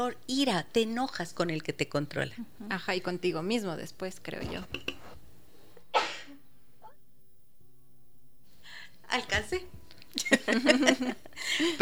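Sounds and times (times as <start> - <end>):
speech: 0.0 - 5.0, 9.1 - 11.8
person sneezing: 5.9 - 6.4
laughter: 10.2 - 11.8.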